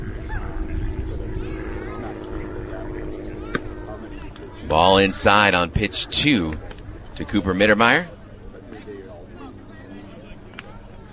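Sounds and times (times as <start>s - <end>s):
faint voices murmuring: 0.0s - 11.1s
small twin-engine plane flying over a baseball game: 0.0s - 11.1s
speech: 4.7s - 8.2s.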